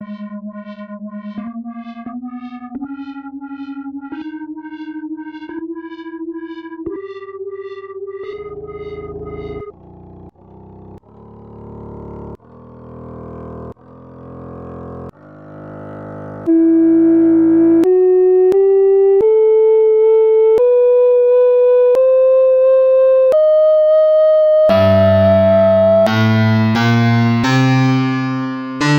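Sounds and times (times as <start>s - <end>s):
F flat melodic minor scale: 16.5s - 28.9s.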